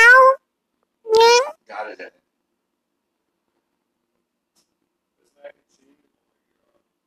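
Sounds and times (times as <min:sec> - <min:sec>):
cat meowing: 0:00.0 - 0:00.4, 0:01.1 - 0:01.6
speech: 0:01.9 - 0:02.2.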